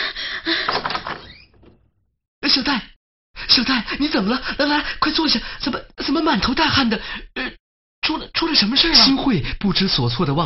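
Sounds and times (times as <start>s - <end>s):
dormitory room door latch rattling: 0.7s - 2.1s
speech: 2.6s - 10.4s.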